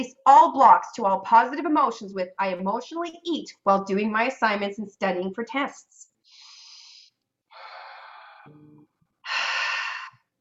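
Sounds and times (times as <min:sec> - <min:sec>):
speech: 0:00.0 - 0:06.1
slow breaths drawn in during a guided breathing exercise: 0:06.3 - 0:10.2.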